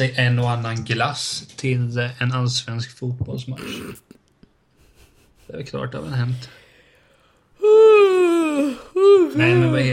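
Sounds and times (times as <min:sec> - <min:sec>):
speech: 0:00.0 - 0:04.2, 0:05.5 - 0:06.6, 0:08.6 - 0:09.9
person yawning: 0:07.6 - 0:09.7.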